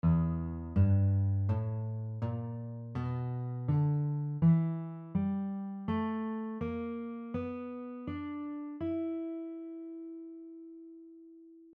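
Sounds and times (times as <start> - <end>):
guitar playing E minor blues scale: 0.0 - 10.8.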